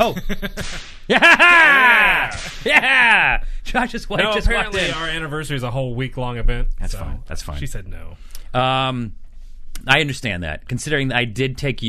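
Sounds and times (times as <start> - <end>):
laughter: 0.0 - 5.2
speech: 0.0 - 9.2, 9.8 - 11.8
whip crack sound effect with falling whistle-like tone: 0.6 - 1.1, 2.3 - 2.7.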